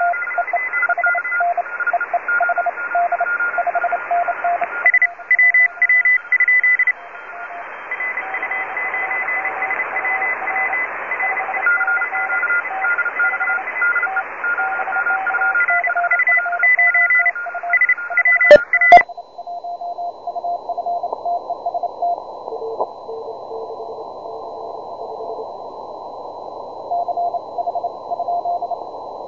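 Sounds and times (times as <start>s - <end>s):
20m filtered sample: 0.2s - 29.2s.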